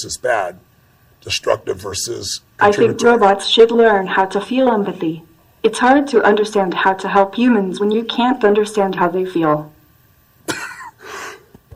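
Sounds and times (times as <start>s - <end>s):
speech: 0.0s - 9.7s
harsh raspy cough: 10.4s - 11.5s.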